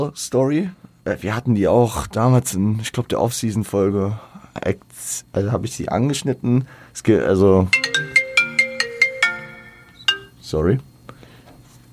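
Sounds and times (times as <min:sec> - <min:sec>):
speech: 0:00.0 - 0:08.1, 0:10.5 - 0:10.9
mobile phone ringtone electronic melody: 0:07.8 - 0:10.4.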